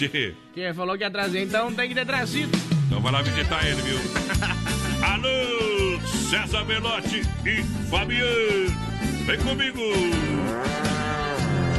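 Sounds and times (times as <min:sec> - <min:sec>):
speech: 0:00.0 - 0:04.5, 0:05.1 - 0:10.4
laughter: 0:03.8 - 0:05.3
cattle mooing: 0:10.2 - 0:11.7.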